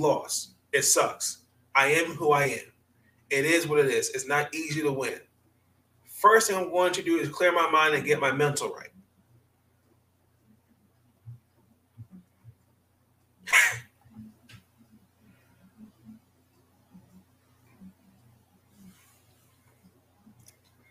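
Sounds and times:
speech: 0:00.0 - 0:02.7, 0:03.3 - 0:05.3, 0:06.2 - 0:08.9
single sharp explosive sneeze: 0:13.5 - 0:13.9.

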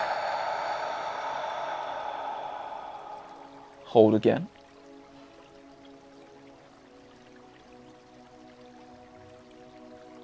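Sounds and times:
breath exhaled during a breathwork exercise: 0:00.0 - 0:04.0
speech: 0:03.9 - 0:04.6.

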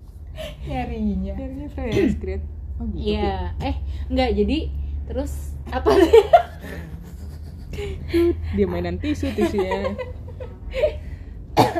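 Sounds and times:
speech: 0:00.7 - 0:07.0, 0:07.7 - 0:11.0
soft breathy laugh-like sounds: 0:06.5 - 0:08.4
sharp loud cough: 0:11.6 - 0:11.7.

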